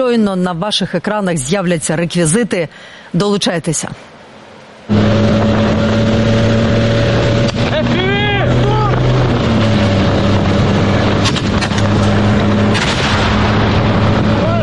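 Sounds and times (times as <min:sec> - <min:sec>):
speech: 0:00.0 - 0:04.2
Russian military drone buzzing on the road to Stepnohirsk, Ukraine: 0:04.9 - 0:14.6
sharp knocks and rattles: 0:10.3 - 0:13.3.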